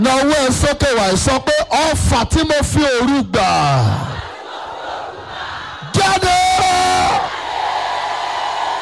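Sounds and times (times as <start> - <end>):
speech: 0.0 - 4.2
crowd of people shouting together: 3.7 - 8.8.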